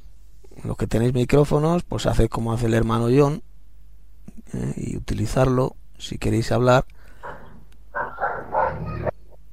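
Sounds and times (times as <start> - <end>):
faint low hum: 0.0 - 9.5
speech: 0.7 - 3.5, 4.4 - 7.0
dog barking: 7.2 - 9.1.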